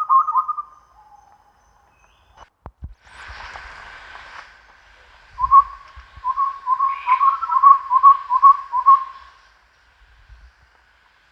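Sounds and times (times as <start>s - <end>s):
chestnut-rumped babbler calling in low hollow whistled notes: 0.0s - 2.4s, 5.4s - 9.4s.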